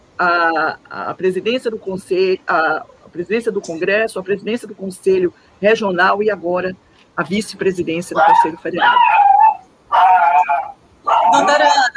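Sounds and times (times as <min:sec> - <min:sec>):
speech: 0:00.2 - 0:09.2, 0:11.3 - 0:11.9
dog whiny barks: 0:08.2 - 0:11.7.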